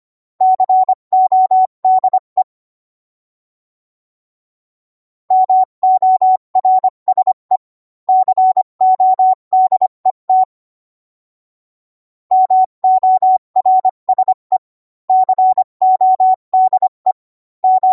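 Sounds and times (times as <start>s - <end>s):
Morse code beeps: 0.4s - 2.5s, 5.3s - 10.5s, 12.3s - 17.9s.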